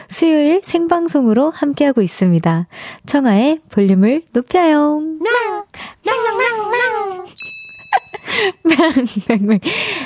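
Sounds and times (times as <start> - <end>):
speech: 0.1 - 6.0, 8.4 - 10.0
human voice imitating cat meows: 5.2 - 7.3
laughter: 6.1 - 9.7
bright chime-like tone: 7.3 - 9.1.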